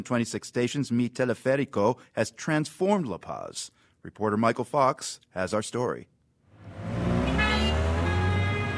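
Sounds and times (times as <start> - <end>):
speech: 0.0 - 7.0
dense traffic engines roaring in car-choked streets: 6.5 - 8.7
car horn: 6.7 - 8.7.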